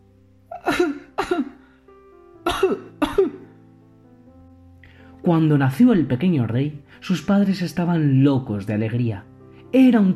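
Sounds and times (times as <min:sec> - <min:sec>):
child coughing: 0:00.6 - 0:01.6, 0:02.4 - 0:03.5
speech: 0:05.3 - 0:10.1.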